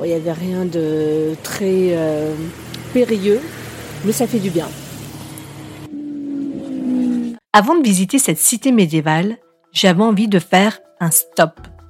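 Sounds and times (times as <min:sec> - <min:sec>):
speech: 0:00.0 - 0:04.8, 0:07.6 - 0:11.7
motorcycle engine humming while riding on small country roads: 0:00.0 - 0:07.4.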